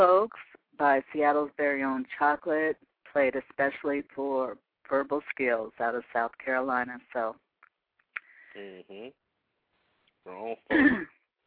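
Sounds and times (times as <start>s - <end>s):
speech: 0.0s - 7.4s, 8.6s - 9.2s, 10.2s - 11.2s
man clearing his throat because of a tickle in his throat: 10.7s - 11.2s
man coughing because of a tickle in his throat: 10.7s - 11.2s.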